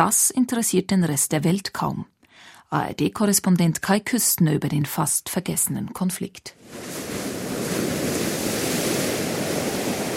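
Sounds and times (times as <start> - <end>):
speech: 0.0 - 8.0
ocean surf washing onto a beach: 6.6 - 10.1.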